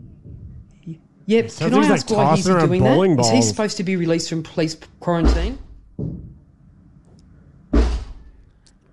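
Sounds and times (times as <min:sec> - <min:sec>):
speech: 0:00.8 - 0:05.6
man's fist punching a wall upstairs: 0:07.8 - 0:08.2.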